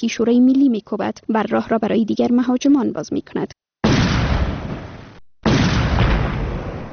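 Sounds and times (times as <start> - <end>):
speech: 0.0 - 3.6
heavy blast: 3.8 - 6.9
loud rumbling explosion: 3.8 - 6.9.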